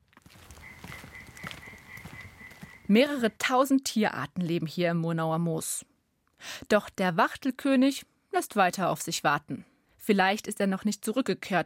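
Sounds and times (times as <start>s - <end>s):
European tree frog croaking for courtship in a moor at sunset: 0.4s - 2.9s
speech: 2.9s - 5.9s, 6.5s - 11.6s.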